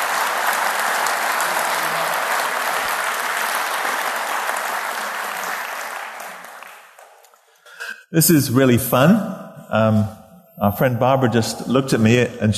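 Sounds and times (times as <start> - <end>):
room full of people applauding: 0.0 - 7.7
speech: 8.1 - 12.5.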